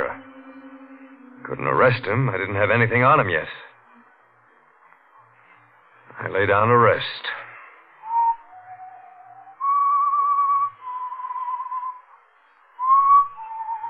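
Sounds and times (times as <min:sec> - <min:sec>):
lone whistled melody: 0:00.0 - 0:02.7, 0:08.0 - 0:12.2, 0:12.8 - 0:13.8
speech: 0:01.5 - 0:03.7, 0:06.3 - 0:07.4.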